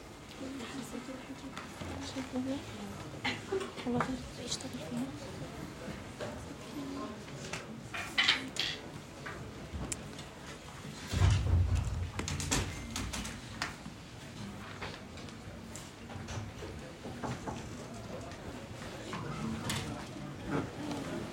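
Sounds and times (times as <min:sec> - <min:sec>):
faint noise: 0:00.0 - 0:21.3
door pulled shut in a classroom with a dull heavy thud: 0:11.1 - 0:13.4.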